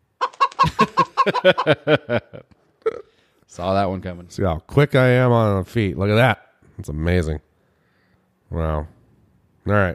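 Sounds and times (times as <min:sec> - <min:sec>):
chicken clucking: 0:00.2 - 0:01.9
laughter: 0:00.5 - 0:03.0
speech: 0:00.8 - 0:02.6, 0:03.5 - 0:07.5, 0:08.5 - 0:09.0, 0:09.6 - 0:09.9.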